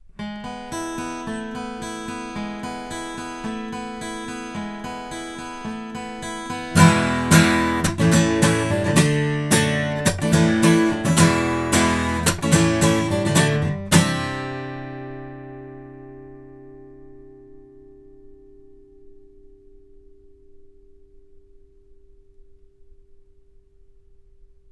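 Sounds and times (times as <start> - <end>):
guitar recorded with omni microphones: 0.0 - 24.0.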